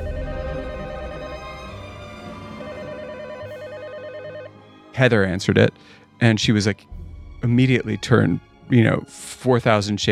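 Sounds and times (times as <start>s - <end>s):
telephone ringing with a warbling electronic trill: 0.0s - 4.6s
speech: 5.0s - 10.0s.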